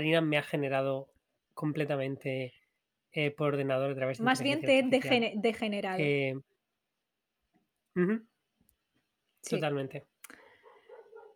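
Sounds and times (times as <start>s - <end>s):
speech: 0.0s - 6.5s, 8.0s - 8.3s, 9.4s - 10.4s
single quick sharp dog bark: 10.4s - 11.3s.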